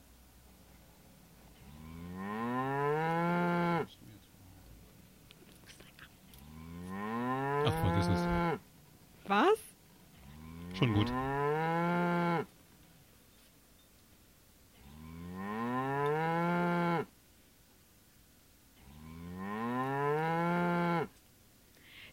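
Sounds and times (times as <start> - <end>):
cow mooing: 1.6 - 3.9, 6.4 - 8.6, 10.2 - 12.5, 14.8 - 17.1, 18.8 - 21.1.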